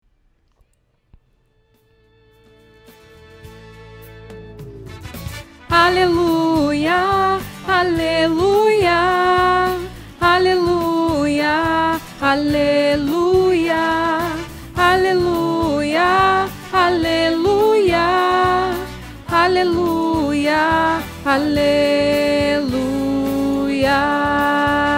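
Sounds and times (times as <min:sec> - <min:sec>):
soprano singing: 0:05.7 - 0:24.9.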